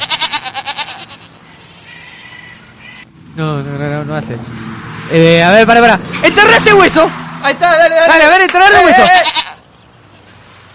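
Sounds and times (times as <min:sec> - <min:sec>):
goat bleating: 0:00.0 - 0:03.1, 0:08.7 - 0:10.3
speech: 0:03.4 - 0:09.4.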